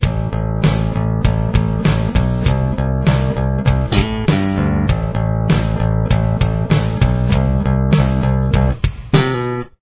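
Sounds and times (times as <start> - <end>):
bass with chorus effect: 0.0 - 9.8.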